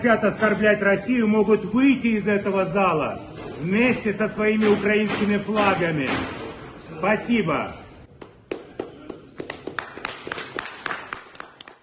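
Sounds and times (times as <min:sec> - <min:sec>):
speech: 0:00.0 - 0:06.4, 0:07.0 - 0:07.8
delegation applauding in an assembly hall: 0:08.1 - 0:11.8.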